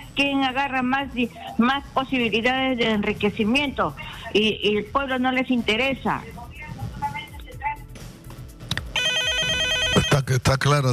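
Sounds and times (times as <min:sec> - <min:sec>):
speech: 0:00.2 - 0:06.4, 0:10.2 - 0:10.9
telephone ringing with an incoming call: 0:09.0 - 0:10.3.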